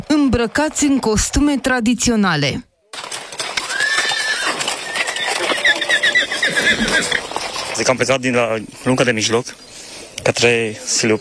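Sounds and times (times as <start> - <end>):
horse hooves clip-clopping as riders in traditional costume arrive on horseback: 0.0 - 2.2, 2.9 - 11.2
speech: 0.0 - 2.7, 7.8 - 11.2
horses neighing at a pilgrimage in Harghita, Romania: 2.9 - 7.8.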